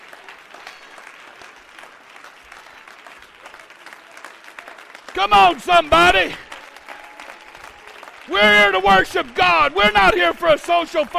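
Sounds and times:
audience clapping hands in praise: 0:00.0 - 0:11.1
speech: 0:05.2 - 0:06.4, 0:08.3 - 0:11.1.

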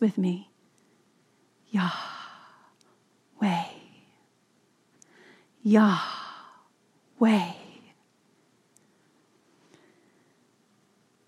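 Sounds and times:
speech: 0:00.0 - 0:00.5, 0:01.7 - 0:02.2, 0:03.4 - 0:03.7, 0:05.6 - 0:06.2, 0:07.2 - 0:07.6
slow audible breath released as a soft breathy sigh: 0:01.8 - 0:02.8, 0:05.0 - 0:06.7.

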